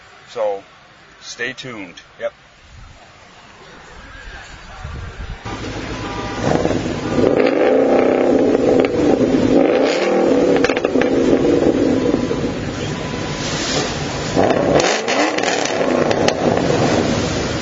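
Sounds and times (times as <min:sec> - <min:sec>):
speech: 0:00.4 - 0:02.6
wind buffeting the microphone: 0:02.6 - 0:03.0, 0:03.8 - 0:05.5
600-horsepower Charger and 500-horsepower Mustang muscle car engines revving and roaring: 0:02.8 - 0:17.5.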